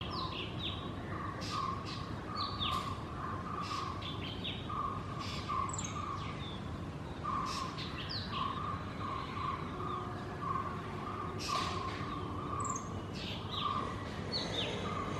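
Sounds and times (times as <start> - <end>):
ashy drongo calling: 0.0 - 6.4, 7.2 - 15.1.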